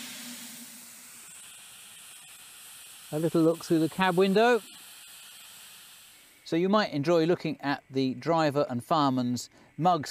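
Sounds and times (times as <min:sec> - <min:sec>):
steam locomotive safety valves blowing off steam: 0:00.0 - 0:07.6
speech: 0:03.1 - 0:04.8, 0:06.5 - 0:10.0.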